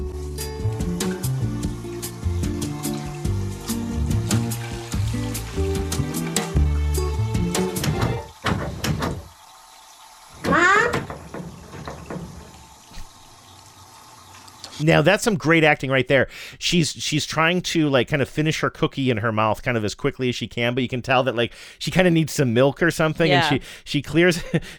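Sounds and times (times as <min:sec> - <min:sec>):
music: 0:00.0 - 0:08.3
child knocking on a bathroom door: 0:10.4 - 0:12.4
speech: 0:14.8 - 0:24.7.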